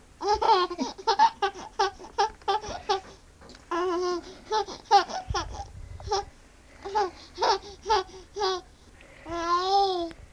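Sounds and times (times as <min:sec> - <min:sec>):
seven-month-old human baby girl laughing: 0:00.2 - 0:03.1, 0:03.7 - 0:08.7.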